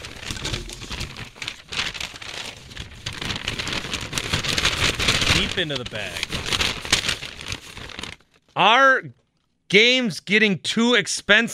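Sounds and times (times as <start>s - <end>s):
sheets of paper being crumpled: 0.0s - 8.6s
speech: 5.4s - 6.4s, 8.6s - 11.5s.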